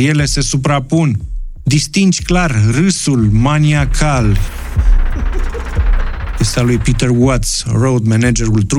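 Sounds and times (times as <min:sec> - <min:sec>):
speech: 0:00.0 - 0:05.6, 0:06.4 - 0:08.7
faint hum: 0:03.2 - 0:07.4
deep booming heartbeat sound effect from a band's album: 0:03.2 - 0:07.5.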